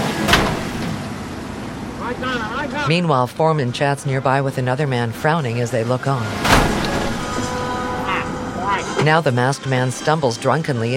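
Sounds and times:
car crashing into a wall while parking: 0.2s - 1.0s, 6.4s - 8.1s
speech: 2.1s - 6.8s, 9.0s - 10.9s.

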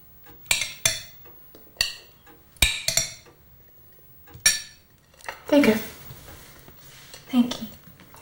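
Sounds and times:
spoon clinking against a plate as peas are served at a dinner table: 0.5s - 1.2s, 1.8s - 3.3s
speech: 5.5s - 5.9s.

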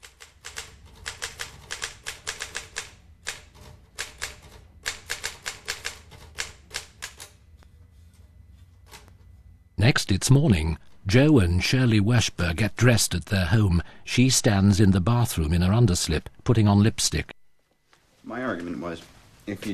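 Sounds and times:
typewriter keystrokes of a man typing at his desk: 0.0s - 7.4s
low hum: 0.0s - 19.7s
speech: 9.9s - 17.3s, 18.6s - 19.7s.

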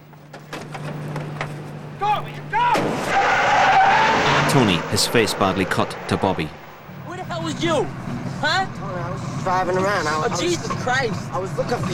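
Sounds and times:
car tires screeching as it brakes hard: 2.0s - 11.9s
sharp bangs: 2.6s - 7.0s
speech: 4.5s - 6.6s, 7.5s - 8.8s, 9.4s - 11.9s.

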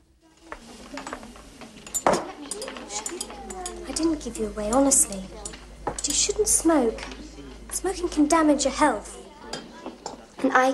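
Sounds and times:
soufflé dish set down on a kitchen worktop: 0.4s - 6.2s
crockery clattering: 0.4s - 8.6s
speech: 4.0s - 5.4s, 6.0s - 9.2s, 10.4s - 10.7s.

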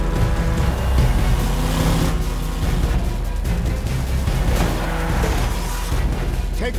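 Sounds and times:
Hummer engine roaring: 0.0s - 6.6s
Hummer crashing into debris and rolling over: 4.2s - 6.0s.

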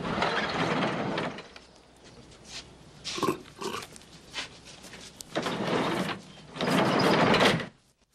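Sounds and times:
clanks and rattling: 0.0s - 1.6s, 5.3s - 7.8s
heavy sliding door of a large red barn grinding along its track: 0.0s - 1.6s, 5.3s - 7.8s.

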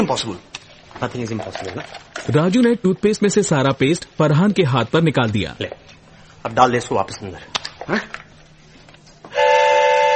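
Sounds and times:
speech: 0.0s - 8.2s
train horn blaring: 9.3s - 10.1s.

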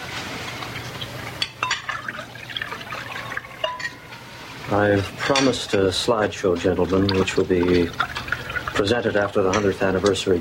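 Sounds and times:
low hum: 0.0s - 10.3s
wine being poured at a table: 0.6s - 5.2s, 5.8s - 10.2s
speech: 4.7s - 8.2s, 8.8s - 10.3s.

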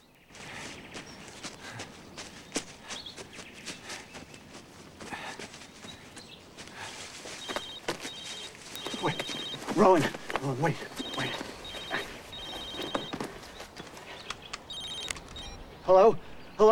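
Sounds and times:
footsteps of a person walking: 0.3s - 15.4s
speech: 9.8s - 11.4s, 15.9s - 16.7s.

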